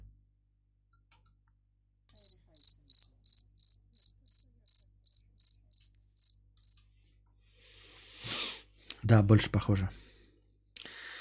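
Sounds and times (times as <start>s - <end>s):
cricket chirping in shrill loud pulses: 2.1s - 6.8s
speech: 9.1s - 10.0s.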